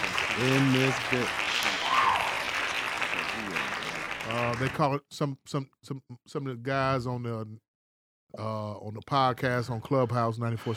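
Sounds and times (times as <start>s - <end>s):
group clapping: 0.0s - 4.9s
speech: 0.4s - 1.6s, 4.3s - 7.6s, 8.3s - 10.7s.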